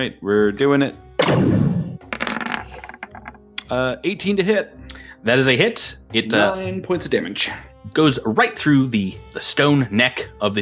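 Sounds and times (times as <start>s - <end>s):
speech: 0.0s - 1.6s, 3.7s - 10.5s
dice clattering across a hard tabletop: 2.1s - 3.4s.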